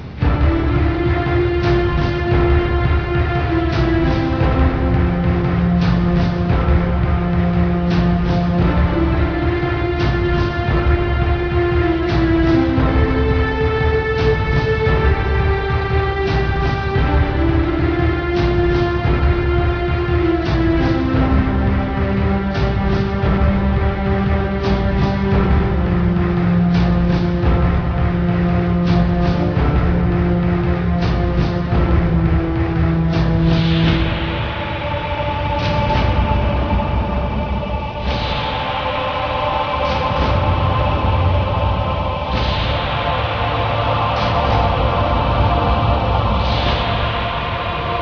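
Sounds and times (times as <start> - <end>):
end song: 0.1 - 48.0.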